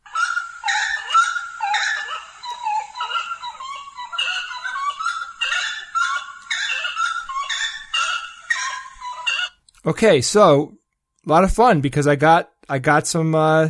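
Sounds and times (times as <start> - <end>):
unidentified bird giving harsh honking yelping calls: 0.0 - 9.6
speech: 9.8 - 13.6.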